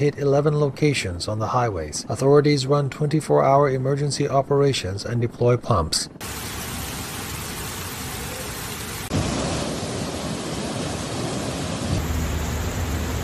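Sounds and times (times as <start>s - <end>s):
speech: 0.0s - 6.6s
deep low rumble of thunder: 6.2s - 13.2s
torrential rain: 6.2s - 13.2s.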